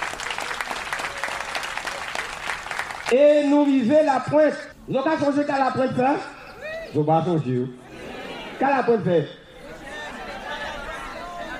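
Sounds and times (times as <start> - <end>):
crowd applauding: 0.0 - 3.8
speech: 3.1 - 7.8, 8.6 - 9.4.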